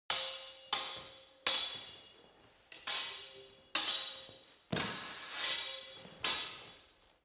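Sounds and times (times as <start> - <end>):
fast freestyle sword hits: 0.1 - 2.1, 2.8 - 6.6.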